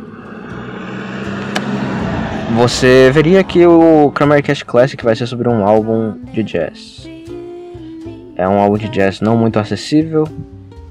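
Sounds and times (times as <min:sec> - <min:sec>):
car passing by outside: 0:00.0 - 0:05.8
low car engine hum: 0:00.0 - 0:09.2
speech: 0:02.6 - 0:07.1, 0:08.4 - 0:10.5.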